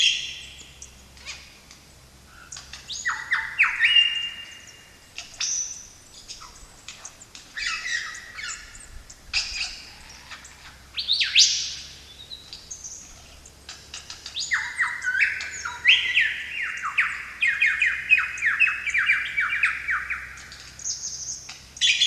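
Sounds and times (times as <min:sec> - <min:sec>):
lyrebird mimicking calls of a magpie and black cockatoo in the Australian bush: 0:02.3 - 0:11.8, 0:12.8 - 0:22.0.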